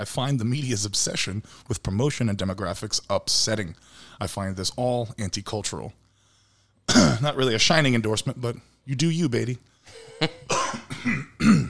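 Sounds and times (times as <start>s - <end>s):
speech: 0.0s - 6.0s, 6.9s - 10.4s, 11.0s - 11.3s
person clearing throat: 6.9s - 7.3s, 10.0s - 11.6s
person coughing with harsh bursts and rough hack: 6.9s - 7.3s, 9.9s - 11.6s.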